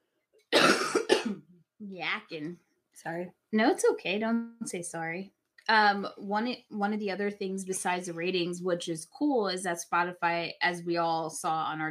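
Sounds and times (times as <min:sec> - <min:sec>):
harsh coughs: 0:00.6 - 0:01.4
speech: 0:01.3 - 0:11.8.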